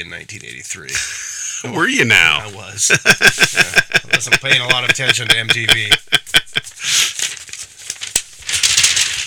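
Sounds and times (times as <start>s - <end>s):
speech: 0.0s - 6.2s
paper record sleeve crinkling: 2.1s - 2.8s, 6.6s - 9.2s
laughter: 2.8s - 6.8s.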